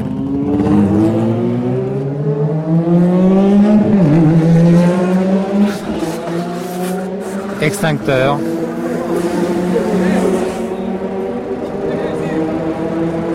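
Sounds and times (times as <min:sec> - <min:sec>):
burning car's engine roaring: 0:00.0 - 0:13.3
speech: 0:07.8 - 0:08.5.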